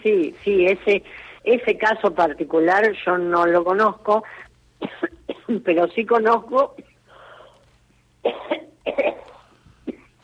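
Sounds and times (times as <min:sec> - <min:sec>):
speech: 0:00.0 - 0:06.8, 0:08.2 - 0:09.1
person in a harsh coughing fit: 0:04.8 - 0:05.6, 0:08.3 - 0:10.2.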